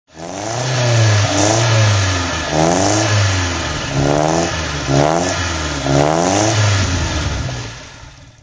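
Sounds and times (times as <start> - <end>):
Giulietta Spider engine throttle revving: 0.1 - 8.4.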